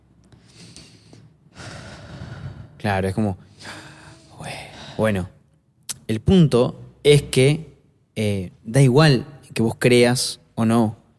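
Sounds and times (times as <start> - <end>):
person inhaling and exhaling audibly: 0.3 - 2.8, 3.4 - 5.2
speech: 2.8 - 3.8, 4.4 - 5.4, 6.1 - 11.0.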